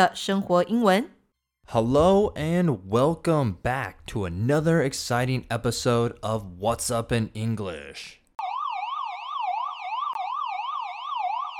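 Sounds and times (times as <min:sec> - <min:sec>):
speech: 0:00.0 - 0:08.2
police siren wailing: 0:08.4 - 0:11.5.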